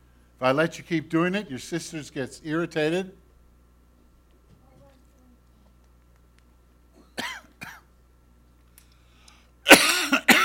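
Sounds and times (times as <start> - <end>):
speech: 0.4 - 3.2
harsh coughing: 7.0 - 7.9, 9.7 - 10.4.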